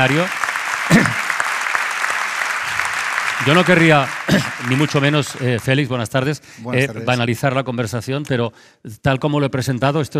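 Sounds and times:
speech: 0.0s - 1.2s, 3.4s - 10.1s
audience applause at a university innovation fair: 0.0s - 6.2s.

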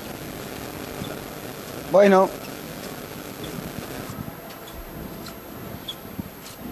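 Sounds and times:
speech: 1.9s - 2.5s
canvas-shoe shuffling of costaleros carrying a procession float: 2.8s - 6.7s.

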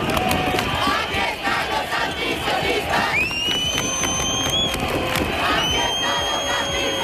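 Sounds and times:
large protest crowd shouting and chanting: 0.0s - 7.0s
piercing whistles: 3.0s - 4.8s, 5.4s - 7.0s.

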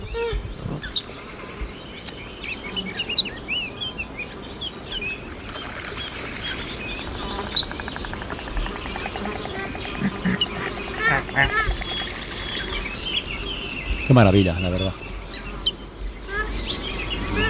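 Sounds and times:
insects buzzing: 0.0s - 17.4s
other birds faintly: 0.0s - 17.4s
purple swamphen calling agitatedly: 1.9s - 17.4s
speech: 14.1s - 15.1s.

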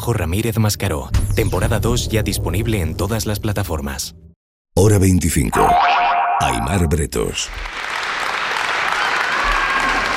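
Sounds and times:
speech: 0.0s - 4.2s, 4.8s - 8.0s
crowd applauding at the entrance of a trial in France: 7.5s - 10.1s.

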